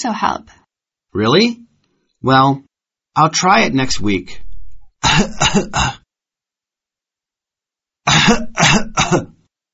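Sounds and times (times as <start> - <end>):
speech: 0.0 - 1.6, 2.2 - 4.4, 5.1 - 6.0, 8.0 - 9.4
harsh rasping coughing fits: 5.0 - 6.1, 8.1 - 9.4.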